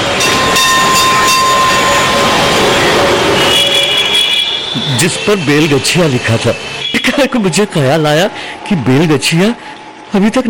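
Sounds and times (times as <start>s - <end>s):
tram rumbling on rails: 0.0s - 9.6s
tram metallic wheel squeal: 0.2s - 7.6s
speech: 5.0s - 10.4s.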